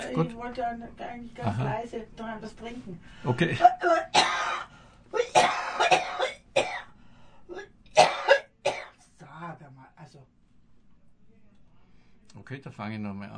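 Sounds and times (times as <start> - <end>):
speech: 0.1 - 5.3, 12.5 - 13.3
person coughing harshly: 4.1 - 6.9, 8.0 - 9.0.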